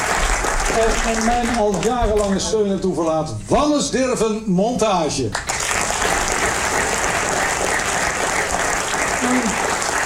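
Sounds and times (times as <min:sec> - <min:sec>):
theater audience applause: 0:00.0 - 0:02.5, 0:05.4 - 0:10.0
speech: 0:00.8 - 0:05.6.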